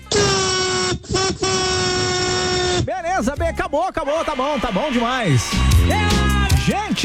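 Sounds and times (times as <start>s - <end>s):
car horns honking during a mass honking event: 0.0s - 3.0s
speech: 3.2s - 7.0s.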